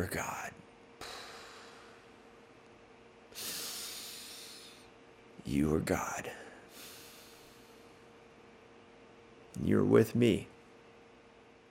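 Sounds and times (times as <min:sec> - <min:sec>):
speech: 0:00.0 - 0:00.4, 0:05.5 - 0:06.4, 0:09.6 - 0:10.5
deep inhale: 0:01.0 - 0:02.2, 0:03.3 - 0:04.9, 0:06.3 - 0:08.0.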